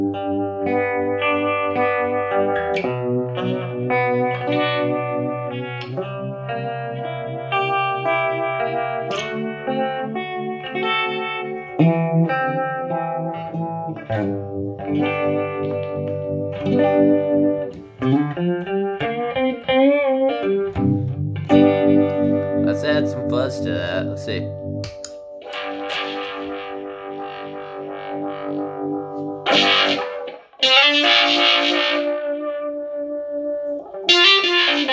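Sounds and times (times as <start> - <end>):
electric guitar through a univibe-style vibe effect playing chords and note runs: 0.0 - 34.9.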